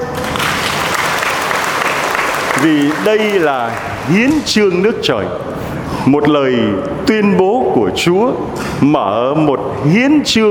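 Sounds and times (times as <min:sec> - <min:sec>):
audience applause at a religious sermon: 0:00.0 - 0:04.2
speech: 0:02.6 - 0:10.4.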